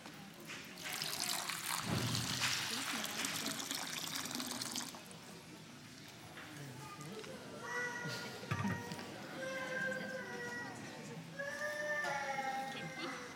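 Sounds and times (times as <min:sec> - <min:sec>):
faint voices murmuring: 0:00.0 - 0:13.3
water pouring into a basin: 0:00.8 - 0:05.3.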